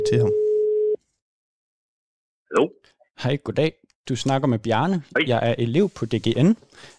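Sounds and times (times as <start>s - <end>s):
speech: 0.0s - 0.4s, 2.5s - 6.9s
telephone ringing tone while placing a call: 0.0s - 1.0s.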